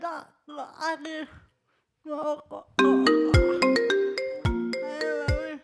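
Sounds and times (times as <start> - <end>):
speech: 0.2 - 3.1
mobile phone ringtone: 2.8 - 5.6.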